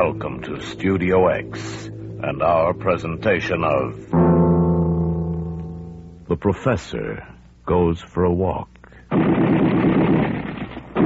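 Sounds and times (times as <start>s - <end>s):
speech: 0.0s - 4.4s, 6.3s - 9.8s
gunfire sound effect in a radio drama: 9.1s - 11.0s.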